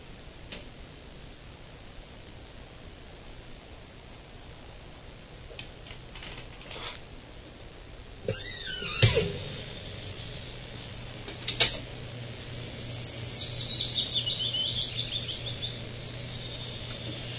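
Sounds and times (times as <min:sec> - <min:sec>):
low steady hum: 0:00.0 - 0:17.3
birds singing and chirping outdoors: 0:12.0 - 0:17.3.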